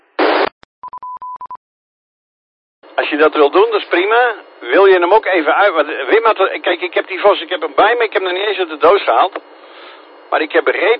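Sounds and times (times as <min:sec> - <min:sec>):
burst of noise: 0:00.0 - 0:00.5
telephone dial tone beeps while placing a call: 0:00.8 - 0:01.6
speech: 0:03.0 - 0:09.6, 0:10.3 - 0:10.9.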